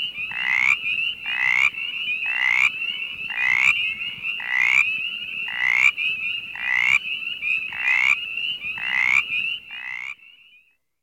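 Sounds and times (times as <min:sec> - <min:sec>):
Mountain chorus frog calling with raspy rising trills: 0:00.0 - 0:10.2.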